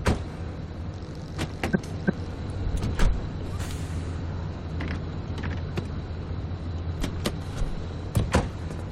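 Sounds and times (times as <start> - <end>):
car engine rumble in a driving video game: 0.0 - 8.9.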